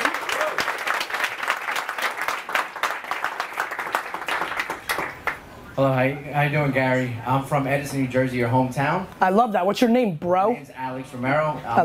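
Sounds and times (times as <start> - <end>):
room full of people applauding: 0.0 - 5.5
speech: 5.8 - 11.8.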